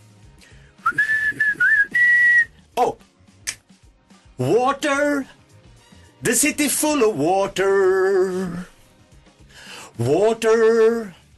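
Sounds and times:
person whistling a short wavering tune: 0.7s - 2.6s
speech: 2.8s - 3.0s, 4.4s - 5.4s, 6.2s - 8.7s, 10.0s - 11.2s.

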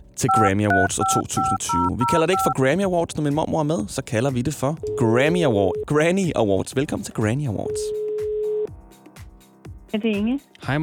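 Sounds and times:
speech: 0.2s - 8.0s, 9.9s - 10.8s
telephone dialing beeps: 0.3s - 2.6s, 4.8s - 5.9s, 7.7s - 8.7s
telephone line steady tone: 0.3s - 2.6s, 4.8s - 5.9s, 7.7s - 8.7s.

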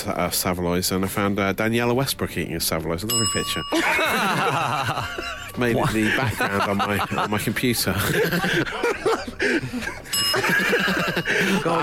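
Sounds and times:
speech: 0.0s - 11.8s
small bell ringing: 3.1s - 6.1s, 10.1s - 11.8s
people chuckling and laughing: 3.7s - 11.8s.

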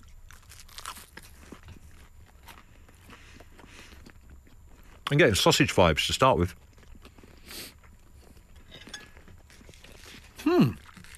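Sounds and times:
person biting into and chewing a toastie: 0.0s - 5.2s, 6.5s - 11.1s
speech: 5.1s - 6.6s.

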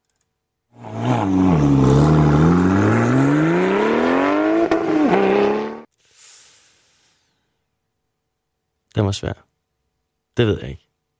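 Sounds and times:
Porsche sports car engine revving: 0.8s - 5.9s
speech: 9.1s - 9.5s, 10.4s - 10.8s.

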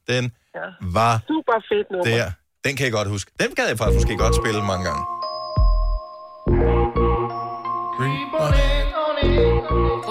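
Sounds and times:
speech: 0.1s - 5.2s
mobile phone electronic ringtone melody with bell-like tones and bass beats: 3.9s - 10.1s.

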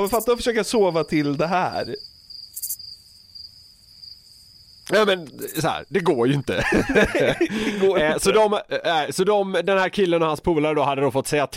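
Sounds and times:
speech: 0.0s - 2.1s, 4.9s - 11.5s
crickets in a box under a terrarium chirping: 0.0s - 8.4s
laughter: 6.3s - 8.6s.

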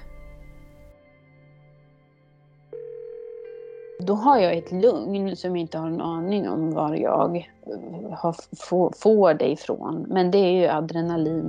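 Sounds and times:
steady electronic telephone tone: 2.8s - 4.0s
speech: 4.0s - 11.4s.

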